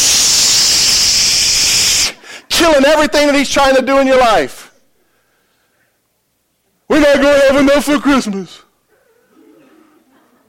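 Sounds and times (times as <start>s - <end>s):
voice imitating bug spray hiss: 0.0s - 2.2s
speech: 2.6s - 4.6s, 7.0s - 8.6s.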